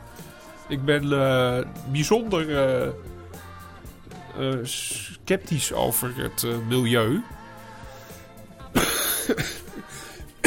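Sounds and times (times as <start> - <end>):
speech: 0.7 - 3.1, 4.4 - 7.4, 9.3 - 9.6
person coughing: 8.8 - 10.4.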